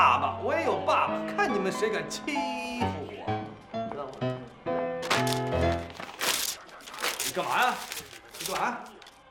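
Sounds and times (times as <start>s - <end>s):
speech: 0.1s - 2.9s, 7.4s - 8.9s
paper with pencil writing being torn up: 5.0s - 9.1s.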